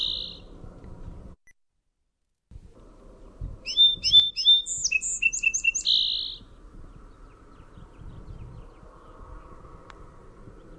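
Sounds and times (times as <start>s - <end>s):
song sparrow singing: 0.0s - 0.5s, 3.6s - 9.6s.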